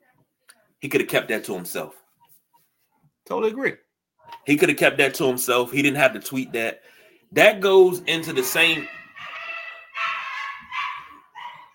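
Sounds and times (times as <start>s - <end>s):
speech: 0.8s - 2.0s, 3.3s - 3.8s, 4.4s - 9.0s
dog barking: 8.1s - 11.7s.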